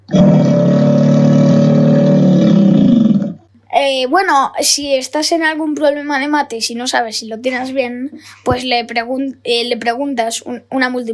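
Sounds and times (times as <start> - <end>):
crocodile rumbling: 0.0 - 3.5
speech: 3.8 - 11.1.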